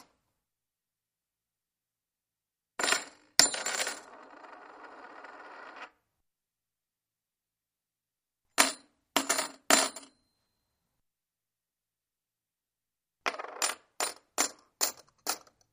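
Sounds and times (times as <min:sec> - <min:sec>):
coins dropping: 0:02.8 - 0:05.9, 0:13.3 - 0:15.7.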